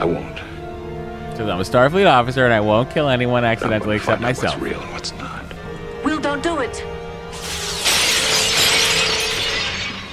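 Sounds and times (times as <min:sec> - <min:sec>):
speech: 0:00.0 - 0:00.5, 0:01.4 - 0:05.4, 0:06.4 - 0:07.0
glass shattering: 0:07.3 - 0:10.1
tinkling glass shards: 0:07.3 - 0:10.1.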